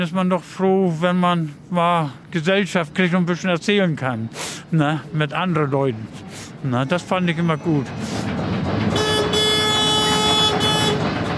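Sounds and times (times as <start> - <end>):
speech: 0.0 - 8.2
harbour launch boat engine rumble: 0.0 - 11.3
horn of a harbour launch boat: 8.9 - 11.2.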